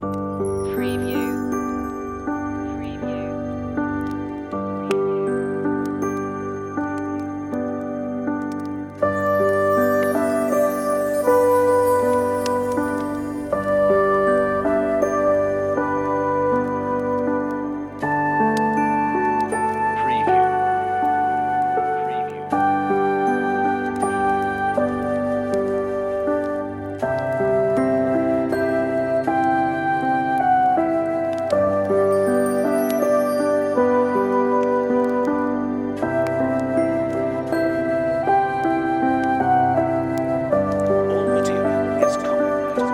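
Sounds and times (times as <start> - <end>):
relaxing Christmas on-hold music: 0.0 - 42.9.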